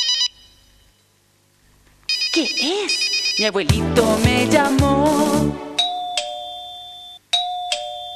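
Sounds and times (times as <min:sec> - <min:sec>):
speech: 0:02.3 - 0:05.7
doorbell two-tone ding-dong chime: 0:05.8 - 0:08.1.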